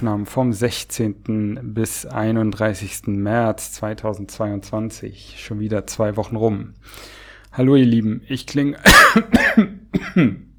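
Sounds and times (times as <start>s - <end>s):
speech: 0.0s - 10.5s
person recovering from Covid clearing their throat: 8.8s - 10.5s
person recovering from Covid coughing: 8.8s - 10.5s.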